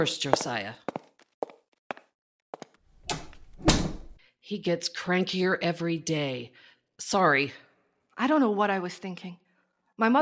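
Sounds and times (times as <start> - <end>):
speech: 0.0 - 0.8, 4.5 - 7.6, 8.2 - 9.4, 10.0 - 10.2
soft footsteps: 0.2 - 4.2
door closing with a thud: 3.1 - 4.2.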